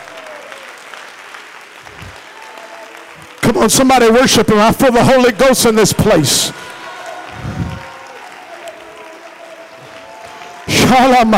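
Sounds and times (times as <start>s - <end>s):
congregation clapping hands: 0.0s - 11.3s
speech: 3.5s - 6.7s, 10.9s - 11.3s.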